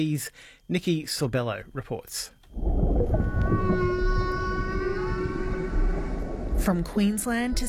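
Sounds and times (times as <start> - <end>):
speech: 0.0 - 3.8, 6.6 - 7.6
humpback whale singing a long tonal moan: 2.5 - 6.7
constant low rumble of ocean noise: 2.5 - 7.6.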